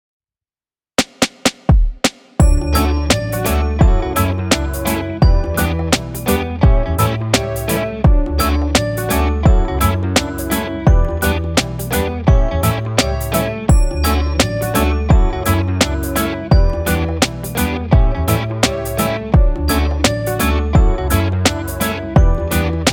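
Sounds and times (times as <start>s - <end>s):
reggae music: 2.4s - 22.9s.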